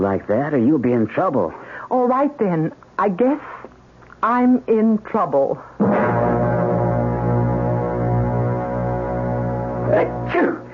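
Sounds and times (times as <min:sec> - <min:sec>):
speech: 0:00.0 - 0:03.5, 0:04.2 - 0:06.1
steady droning hum: 0:05.8 - 0:10.7
person sneezing: 0:09.9 - 0:10.7.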